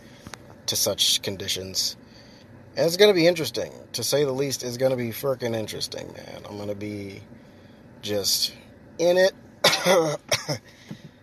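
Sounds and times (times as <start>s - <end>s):
speech: 0.7s - 2.0s, 2.8s - 10.9s
harsh raspy cough: 9.6s - 10.6s.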